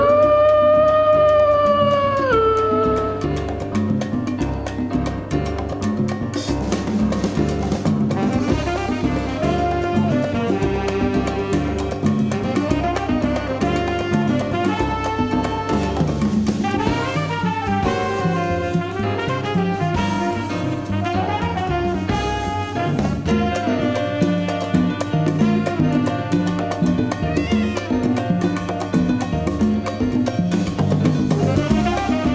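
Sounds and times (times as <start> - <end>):
jazz saxophone weaving busy melodic lines: 0.0 - 3.9, 6.6 - 32.3
steady driving percussion: 0.0 - 32.3
brass playing a brisk mambo: 8.2 - 26.9, 31.4 - 32.3.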